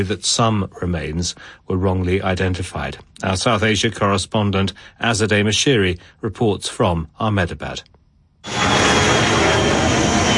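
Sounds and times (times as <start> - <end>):
speech: 0.0 - 9.4
aircraft roaring overhead near an airport runway: 8.4 - 10.3.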